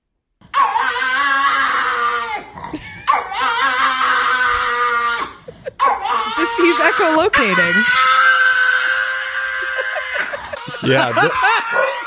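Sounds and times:
dog howling into shrill human-like screams: 0.4 - 12.0
dog yipping: 2.8 - 4.8, 5.8 - 10.5, 11.3 - 12.0
speech: 7.0 - 8.1, 10.9 - 12.0
laughter: 9.4 - 12.0.

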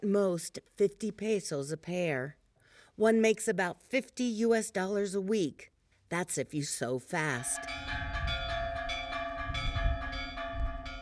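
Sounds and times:
speech: 0.0 - 2.4, 3.0 - 8.0
church bells ringing to summon evening mass: 7.5 - 11.0.

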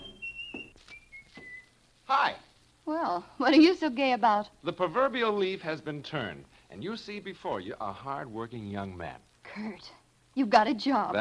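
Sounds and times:
man whistling a simple tune: 0.0 - 1.8
speech: 2.1 - 11.2.

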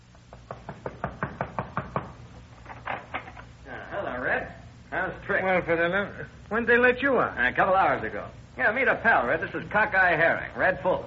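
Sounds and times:
knocking on a door: 0.3 - 2.2
speech: 5.4 - 11.0.

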